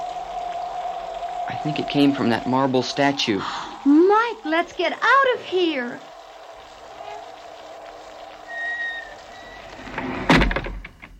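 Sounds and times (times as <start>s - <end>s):
low hollow room ambience: 0.0s - 10.9s
speech: 1.6s - 6.1s
door creaking as it swings shut: 8.5s - 11.1s.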